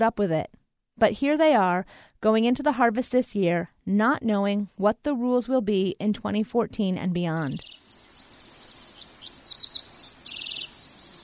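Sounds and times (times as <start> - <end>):
speech: 0.0 - 8.1
dickcissels, field sparrows and common yellowthroats singing over a farm in the hills: 7.4 - 11.2
steady high insect drone: 7.6 - 11.2.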